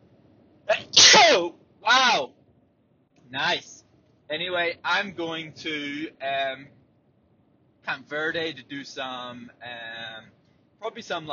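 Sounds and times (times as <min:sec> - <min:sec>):
person sneezing: 0:00.7 - 0:01.5
speech: 0:03.3 - 0:06.8, 0:07.9 - 0:11.3.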